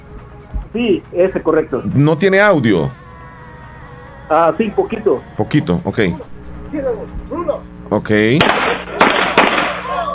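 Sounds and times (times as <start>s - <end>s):
noisy tinny background: 0.0s - 10.1s
speech: 0.7s - 3.0s, 4.3s - 8.9s
gunshots in a video clip: 8.4s - 9.8s.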